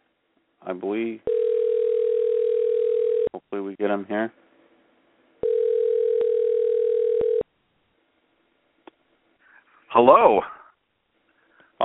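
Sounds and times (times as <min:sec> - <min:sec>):
speech: 0:00.6 - 0:01.5, 0:03.5 - 0:04.4, 0:10.0 - 0:10.6
voicemail tone on a telephone call: 0:01.2 - 0:03.3, 0:05.4 - 0:07.4.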